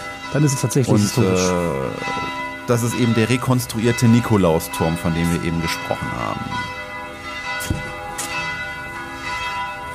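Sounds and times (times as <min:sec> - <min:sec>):
church bells ringing on a Sunday morning signalling the church service: 0:00.0 - 0:09.9
speech: 0:00.3 - 0:06.8.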